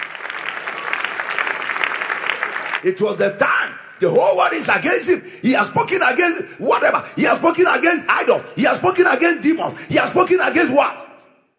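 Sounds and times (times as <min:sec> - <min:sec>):
congregation clapping hands: 0:00.0 - 0:02.9
speech: 0:02.8 - 0:11.0.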